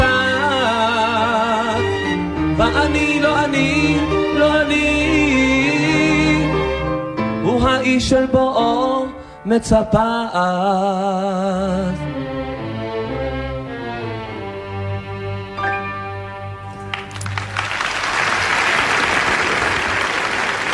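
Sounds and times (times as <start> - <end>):
chamber orchestra music in Ramat Gan: 0.0 - 9.1, 10.4 - 18.8
speech: 2.6 - 5.2, 7.8 - 12.0
large audience applause: 16.8 - 20.7.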